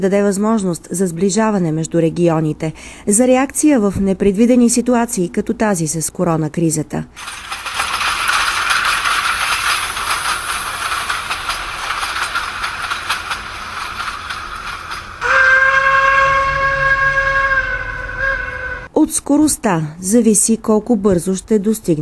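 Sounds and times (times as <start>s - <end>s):
speech: 0.0s - 7.8s, 19.2s - 21.9s
train rumbling along the tracks: 7.2s - 18.9s
train whistle: 15.2s - 18.9s.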